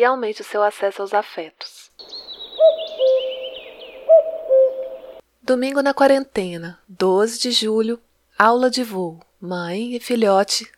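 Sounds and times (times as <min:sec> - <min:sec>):
speech: 0:00.0 - 0:02.2, 0:05.4 - 0:10.7
cuckoo calling descending two-note call: 0:02.0 - 0:05.2
faint continuous twittering of small birds: 0:02.0 - 0:05.2.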